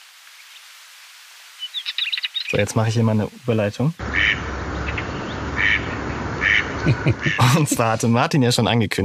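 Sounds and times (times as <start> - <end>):
steady outdoor hiss: 0.0 - 9.0
speech: 2.5 - 4.6, 6.9 - 9.0
duck quacking: 4.0 - 8.0
laughter: 6.8 - 8.3.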